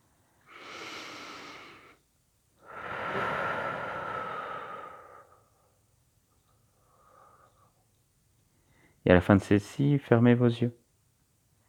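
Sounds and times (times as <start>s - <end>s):
deep breath in and out: 0.5s - 2.0s, 2.6s - 5.8s, 6.7s - 7.8s
speech: 9.1s - 10.8s.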